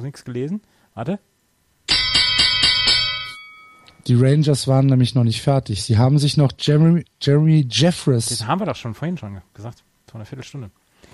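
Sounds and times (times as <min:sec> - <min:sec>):
speech: 0:00.0 - 0:01.3, 0:04.0 - 0:11.1
bright bell ringing: 0:01.9 - 0:04.0.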